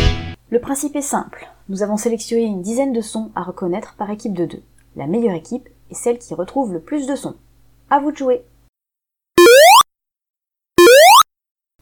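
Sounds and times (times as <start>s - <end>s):
speech: 0.5s - 8.5s
video game jump sound effect: 9.4s - 9.8s, 10.8s - 11.2s.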